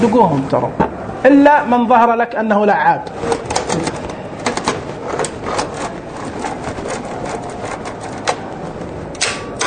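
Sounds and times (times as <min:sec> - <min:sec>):
speech: 0:00.0 - 0:03.5
mechanical typewriter carriage return: 0:03.2 - 0:08.5, 0:09.2 - 0:09.6.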